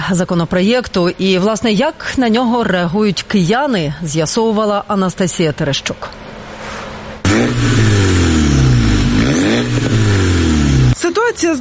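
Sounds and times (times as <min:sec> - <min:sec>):
speech: 0:00.1 - 0:06.2, 0:11.4 - 0:11.5
car engine with straight-through exhaust revving hard under windows in a Ukrainian city: 0:07.2 - 0:11.0.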